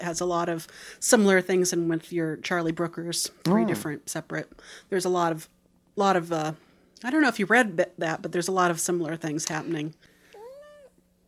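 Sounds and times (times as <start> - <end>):
speech: 0.0 - 10.1
soft hum: 0.0 - 11.2
cat meowing: 10.4 - 10.9.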